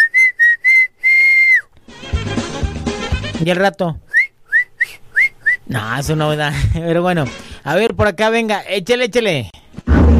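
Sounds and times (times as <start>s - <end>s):
person whistling a tune: 0.0s - 1.7s, 4.1s - 5.6s
music: 1.8s - 3.5s, 7.1s - 7.6s, 9.8s - 10.1s
speech: 3.4s - 4.0s, 5.7s - 9.5s.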